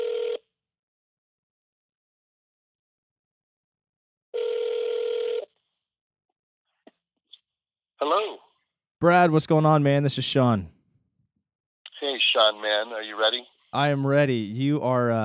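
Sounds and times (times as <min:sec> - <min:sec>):
telephone ringing on the line: 0:00.0 - 0:00.4, 0:04.4 - 0:05.5
speech: 0:08.0 - 0:10.8, 0:12.1 - 0:15.2.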